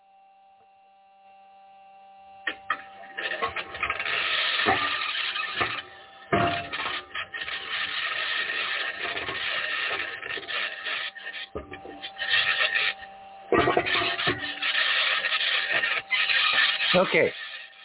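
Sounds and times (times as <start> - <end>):
Mars rover aluminum wheels scratching and grinding over rough ground on Mars: 3.1 - 17.8
speech: 17.0 - 17.4.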